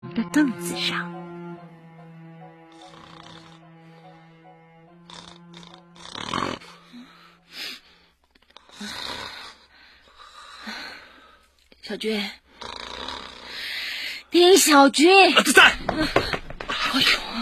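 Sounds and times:
speech: 0:00.2 - 0:01.2, 0:11.9 - 0:12.4, 0:14.3 - 0:16.3
person snoring while asleep: 0:02.6 - 0:03.8, 0:05.0 - 0:07.4, 0:12.6 - 0:13.6.

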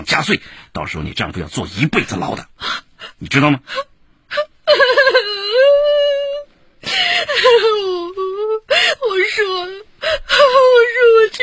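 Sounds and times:
speech: 0:00.0 - 0:05.0
woman crying: 0:03.7 - 0:11.4.

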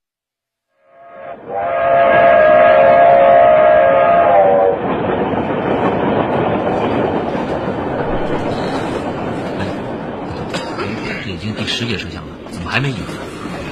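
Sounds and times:
train horn: 0:00.9 - 0:05.0
moving train rumbling and rattling along the rails: 0:01.2 - 0:13.7
speech: 0:12.8 - 0:13.1.

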